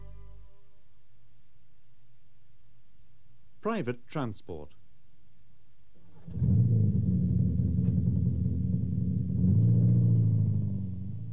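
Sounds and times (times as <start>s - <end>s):
speech: 3.6s - 4.8s
car engine running: 6.0s - 11.3s.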